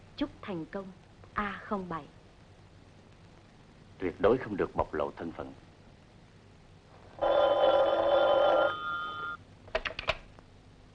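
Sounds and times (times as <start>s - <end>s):
speech: 0.2s - 2.2s, 4.0s - 5.6s
telephone ringing: 7.2s - 9.4s.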